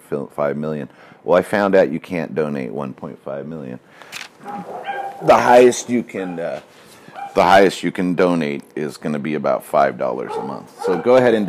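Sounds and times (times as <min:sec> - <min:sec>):
speech: 0:00.1 - 0:11.4
dogs barking and yipping: 0:04.4 - 0:07.6, 0:10.2 - 0:11.4.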